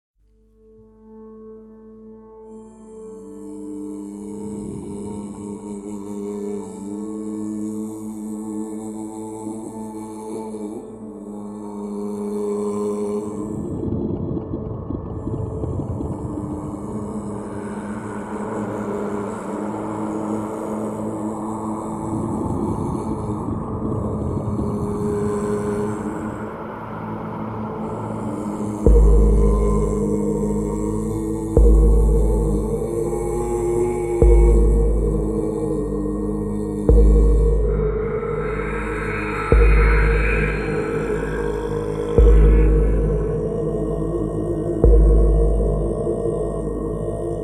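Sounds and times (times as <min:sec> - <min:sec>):
zombie plague ambience: 0:12.8 - 0:47.4.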